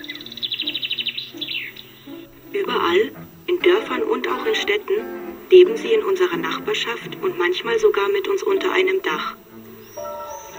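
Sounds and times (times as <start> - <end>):
sweeping whistled bird notes: 0.0 - 2.4, 9.7 - 10.5
birdsong with rapid bright repeated chirps: 0.0 - 10.5
speech: 2.6 - 9.4.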